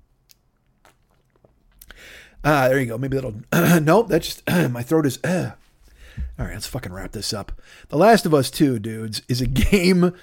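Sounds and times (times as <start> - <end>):
wet gulping clicks: 0.2 - 2.0
sipping ice-cold water from a glass filled to the brim: 0.3 - 2.3
speech: 2.1 - 5.6, 6.2 - 10.2.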